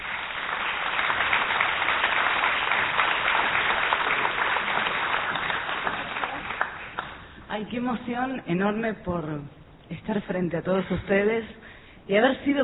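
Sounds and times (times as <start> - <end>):
audience applauding: 0.0 - 7.3
speech: 7.6 - 12.6.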